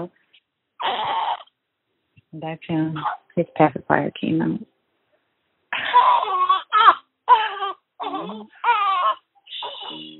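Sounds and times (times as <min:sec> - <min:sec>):
speech: 0:00.0 - 0:00.2, 0:02.3 - 0:04.7, 0:08.2 - 0:08.8
six-day-old newborn baby crying after waking up: 0:00.8 - 0:01.6, 0:03.0 - 0:03.3, 0:05.8 - 0:10.1.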